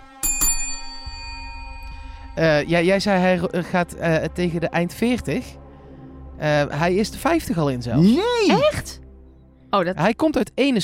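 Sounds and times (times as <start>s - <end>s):
small metallic hand bell being struck: 0.2s - 2.7s
speech: 2.4s - 5.6s, 6.4s - 9.0s, 9.7s - 10.8s.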